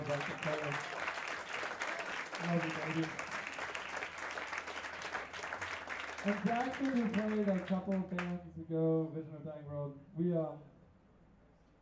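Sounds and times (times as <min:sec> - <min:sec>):
audience applause at a live band show: 0:00.0 - 0:08.3
speech: 0:00.1 - 0:01.0, 0:02.4 - 0:03.3, 0:06.2 - 0:10.7.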